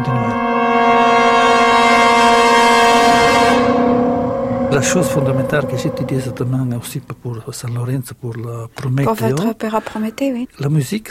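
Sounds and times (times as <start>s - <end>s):
boat horn blaring and echoing among stone walls and water in Venice: 0.0s - 7.2s
speech: 4.8s - 11.0s.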